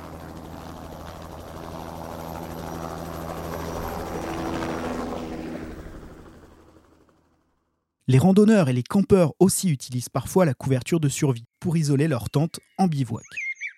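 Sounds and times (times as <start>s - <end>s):
rescue helicopter rotor chop and engine drone: 0.0s - 7.8s
speech: 8.1s - 13.5s.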